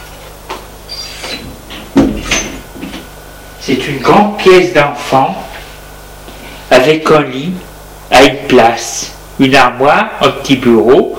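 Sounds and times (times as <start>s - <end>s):
door creaking: 0.9s - 2.6s
speech: 3.7s - 5.5s, 6.8s - 11.1s.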